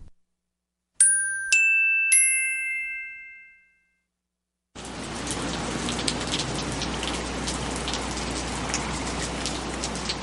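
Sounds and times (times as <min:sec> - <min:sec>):
bright ringing chime notes: 0:01.0 - 0:04.1
steady dense patter of rain: 0:04.8 - 0:10.2.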